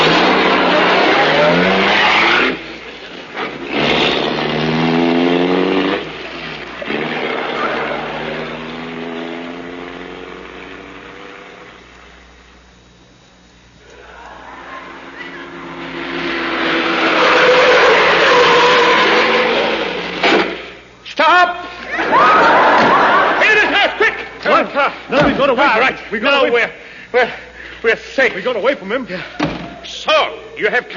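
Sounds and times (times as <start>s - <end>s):
racing car engine revving through gear changes: 0.0s - 11.8s, 13.9s - 20.2s
tire squeal: 0.3s - 2.6s, 13.9s - 19.9s
laughter: 13.9s - 15.7s, 21.8s - 27.4s
speech: 28.2s - 30.9s.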